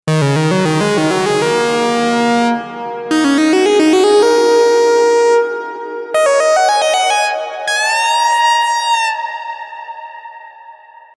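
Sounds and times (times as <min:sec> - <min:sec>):
classic analog synth lead: 0:00.1 - 0:10.9.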